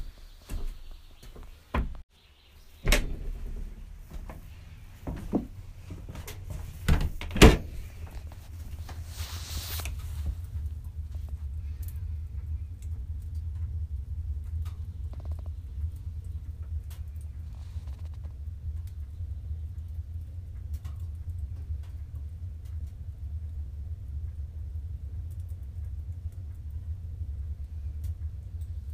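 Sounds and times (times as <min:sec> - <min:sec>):
footsteps walking back to a sauna in Finland: 0:00.0 - 0:02.0, 0:03.0 - 0:11.4
sauna fire roaring deeply in Finland: 0:02.8 - 0:28.9.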